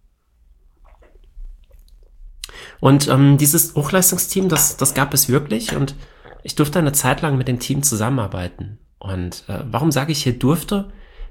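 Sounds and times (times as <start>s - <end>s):
espresso being sipped from a cup: 0.7s - 7.9s
speech: 2.8s - 11.1s.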